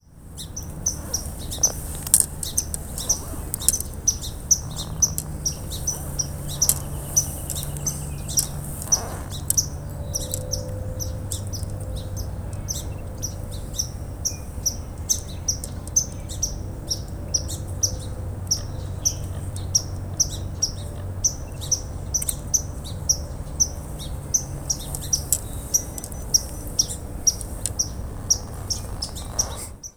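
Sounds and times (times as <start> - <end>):
swamp sparrow singing: 0.0 - 29.9.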